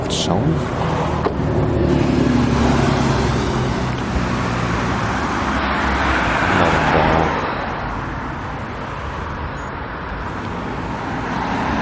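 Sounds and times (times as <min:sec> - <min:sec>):
road traffic on a street: 0:00.0 - 0:11.8
speech: 0:00.2 - 0:00.9.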